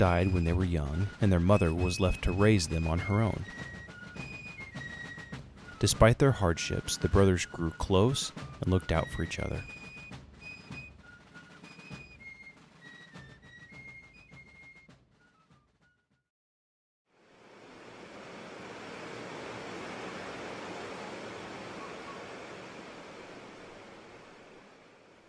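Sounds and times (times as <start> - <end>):
speech: 0.0 - 3.7, 5.8 - 9.8
high chirping whistle-like tones: 0.0 - 15.5, 21.0 - 23.4
raging river's rushing water with a strong current: 17.2 - 25.2.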